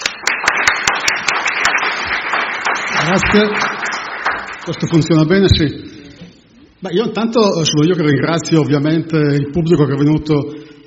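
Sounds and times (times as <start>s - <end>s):
audience applause welcoming a speaker at a public lecture: 0.0s - 4.9s
speech: 3.1s - 4.0s, 4.7s - 5.9s, 6.8s - 10.8s.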